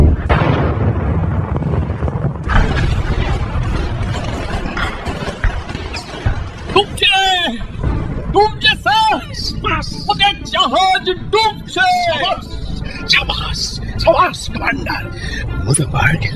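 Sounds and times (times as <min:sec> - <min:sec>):
torpedo fired at a ship and exploding: 0:00.0 - 0:10.2
crackling bursts: 0:00.0 - 0:16.3.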